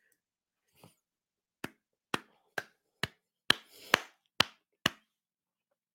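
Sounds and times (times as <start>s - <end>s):
one person clapping hands as applause: 1.6s - 5.1s.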